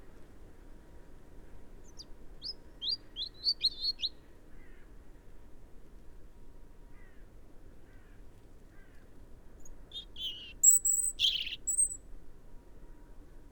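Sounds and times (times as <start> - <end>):
European robin Erithacus rubecula song: 1.8 - 4.2, 9.6 - 12.0.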